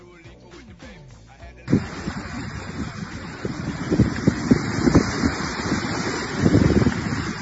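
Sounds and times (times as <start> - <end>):
faint indistinct voices: 1.7 - 7.4
steady rushing water: 1.7 - 7.4
wind buffeting the microphone: 1.7 - 7.4.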